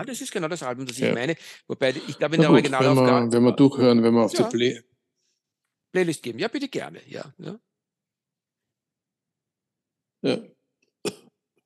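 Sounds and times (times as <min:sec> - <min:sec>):
speech: 0:00.0 - 0:04.9, 0:05.9 - 0:07.7, 0:10.2 - 0:11.2
short harsh coughs: 0:10.3 - 0:11.4.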